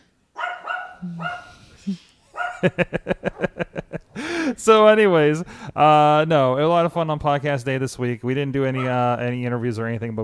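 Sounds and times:
dog barking: 0.3s - 1.6s, 2.3s - 3.6s, 8.8s - 9.0s
speech: 1.0s - 3.2s, 4.6s - 10.2s
laughter: 1.9s - 4.7s.

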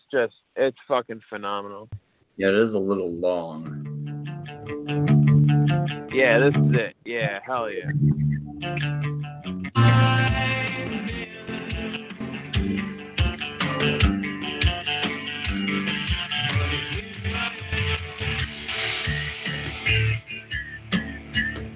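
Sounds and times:
speech: 0.1s - 3.9s, 5.9s - 9.0s
loud rock track with driving drums and distorted guitars: 3.7s - 6.8s, 7.9s - 21.7s.

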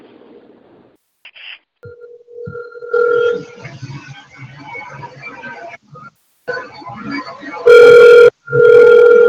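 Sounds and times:
telephone ringing while placing a call: 1.9s - 3.4s, 7.7s - 9.2s.

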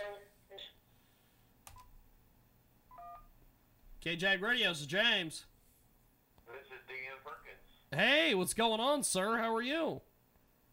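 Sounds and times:
electronic telephone tones of a caller phoning in to a radio show: 2.9s - 3.3s
speech: 4.0s - 5.5s, 6.7s - 10.1s.

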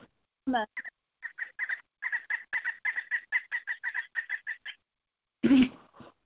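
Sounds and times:
speech: 0.5s - 1.0s
upset bird squawking agitatedly: 0.7s - 4.8s.

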